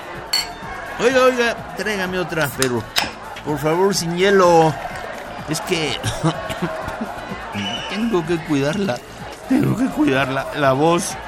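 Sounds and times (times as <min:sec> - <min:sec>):
faint murmur of chatter: 0:00.0 - 0:11.2
glasses clinking in a toast: 0:00.3 - 0:00.7
speech: 0:01.0 - 0:04.9, 0:05.5 - 0:06.9, 0:07.6 - 0:11.2
laughter: 0:05.6 - 0:08.9.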